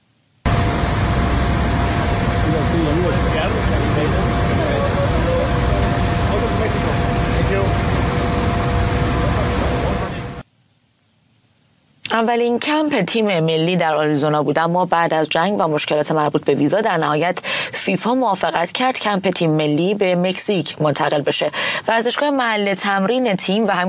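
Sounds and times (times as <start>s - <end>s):
airplane engine roaring: 0.5s - 10.4s
speech: 12.2s - 23.8s.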